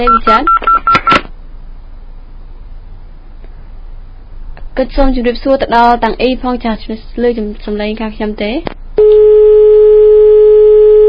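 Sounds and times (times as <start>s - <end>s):
speech: 0.0s - 0.6s, 4.8s - 8.8s
telephone busy signal after a dropped phone call: 9.0s - 11.0s.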